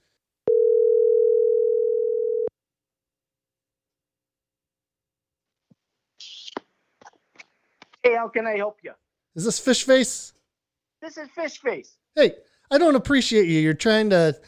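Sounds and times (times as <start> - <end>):
telephone dial tone while placing a call: 0.5 - 2.5
speech: 8.1 - 10.4, 11.0 - 14.4.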